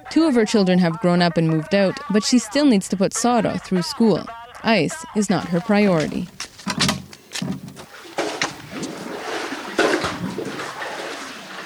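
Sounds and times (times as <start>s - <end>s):
faint sounds: 0.0s - 11.6s
speech: 0.1s - 6.9s
water from a well sloshing into a jerry can: 5.4s - 11.6s
knocks and scrapes of handling a jerry can: 5.5s - 10.9s.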